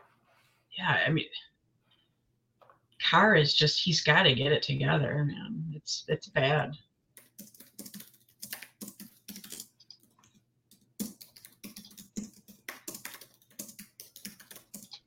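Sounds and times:
speech: 0.8 - 1.5, 3.0 - 6.9
typing on a computer keyboard: 7.2 - 15.0.

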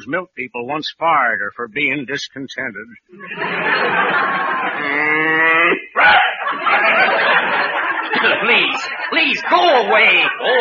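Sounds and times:
speech: 0.0 - 7.3, 8.1 - 10.5
laughter: 3.1 - 10.5
cow mooing: 4.7 - 5.9.

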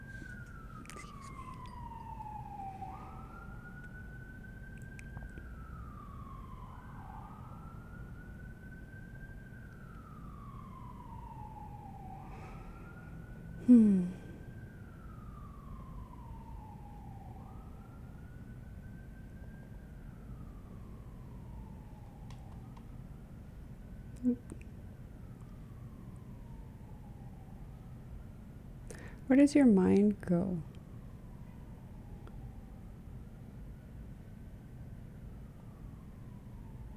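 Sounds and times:
emergency vehicle siren wailing: 0.0 - 36.9
speech: 13.7 - 14.2, 29.3 - 30.7.

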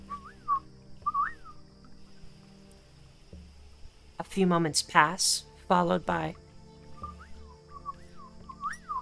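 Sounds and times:
swooping whistles rising and falling in pitch: 0.0 - 1.6, 6.9 - 9.0
speech: 4.2 - 6.4.

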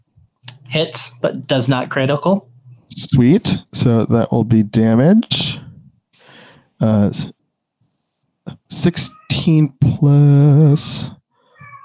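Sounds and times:
speech: 0.7 - 5.6, 6.8 - 7.4, 8.7 - 11.2
angry cat yowling: 9.1 - 9.4, 11.5 - 11.8.

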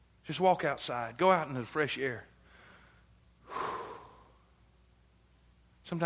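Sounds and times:
speech: 0.3 - 2.3, 5.9 - 6.0
single deep breath during a church sermon: 2.4 - 4.5.

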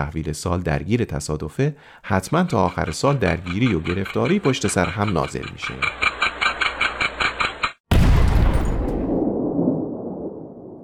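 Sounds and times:
speech: 0.0 - 6.2
rapid evenly pulsing tones: 2.0 - 7.8
cannon shot marking the new year: 7.9 - 10.8.

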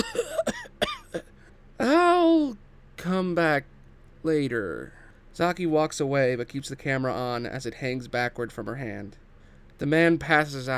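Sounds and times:
man coughing up blood: 0.0 - 1.3
speech: 3.2 - 9.2, 9.8 - 10.7.

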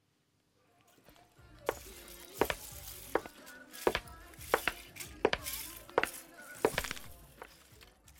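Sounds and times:
soft rustling: 1.0 - 8.0
foot stepping on plastic Lego bricks: 1.7 - 7.6.

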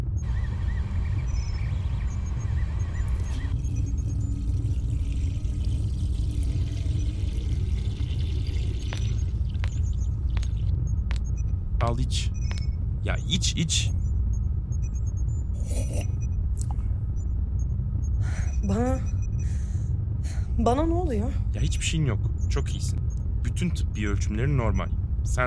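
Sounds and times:
heavy low rumble: 0.0 - 25.4
water pouring into a glass: 3.2 - 10.6
speech: 11.9 - 12.4, 13.0 - 14.0, 18.7 - 19.1, 20.6 - 23.0, 23.6 - 25.4.

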